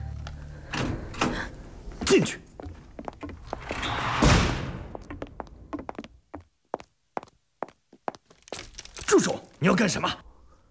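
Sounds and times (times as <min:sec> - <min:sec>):
speech: 0:02.1 - 0:02.5, 0:09.6 - 0:10.3
door being unlatched and pushed open with rattling scrape and clunk: 0:03.5 - 0:04.8.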